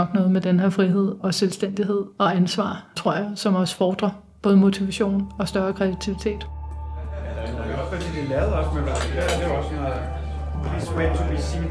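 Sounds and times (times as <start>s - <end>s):
speech: 0.0s - 6.6s, 7.9s - 11.6s
people chatting in the background at an office lunch: 0.0s - 11.6s
steady low hum: 4.4s - 11.6s
cutlery and dishes clinking against plates at an office lunch: 8.9s - 9.6s.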